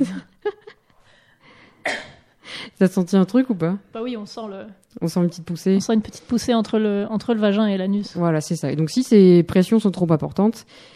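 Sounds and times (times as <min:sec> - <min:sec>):
person coughing while sitting for a pelvic floor exercise: 0:01.8 - 0:02.3
speech: 0:02.8 - 0:10.9.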